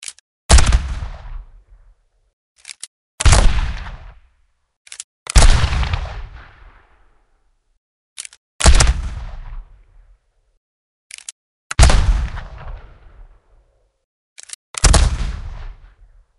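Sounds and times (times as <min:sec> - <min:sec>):
gunshots: 0:00.5 - 0:01.5, 0:03.2 - 0:04.2, 0:05.3 - 0:07.1, 0:08.6 - 0:09.7, 0:11.7 - 0:13.4, 0:14.8 - 0:16.0.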